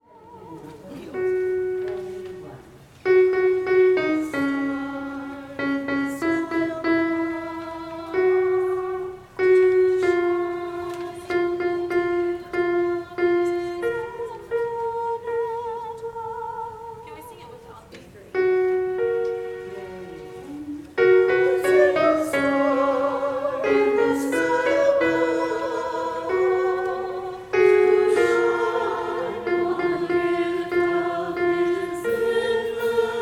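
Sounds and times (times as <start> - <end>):
alto voice: 0.0 - 17.7, 18.3 - 33.2.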